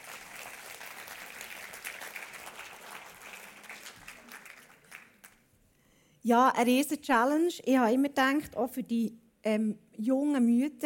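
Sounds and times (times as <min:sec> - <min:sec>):
small audience clapping: 0:00.0 - 0:05.5
speech: 0:06.2 - 0:10.8.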